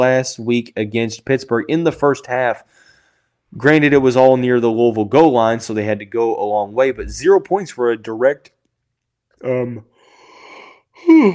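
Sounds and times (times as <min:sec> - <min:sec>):
speech: 0:00.0 - 0:02.8, 0:03.5 - 0:08.6, 0:09.4 - 0:09.9, 0:11.0 - 0:11.3
yawn: 0:10.4 - 0:11.3.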